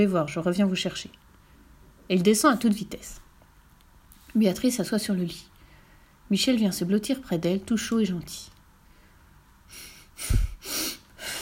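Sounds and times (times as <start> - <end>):
speech: 0.0 - 1.3, 2.1 - 3.2, 4.4 - 5.5, 6.3 - 8.6, 9.7 - 10.5
big loud sniff through the nose: 9.7 - 11.4.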